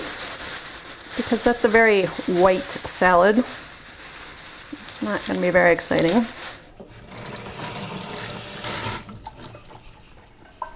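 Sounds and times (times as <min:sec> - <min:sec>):
speech: 0:01.2 - 0:03.6, 0:05.0 - 0:06.4
tap water rushing from a faucet: 0:06.8 - 0:10.7.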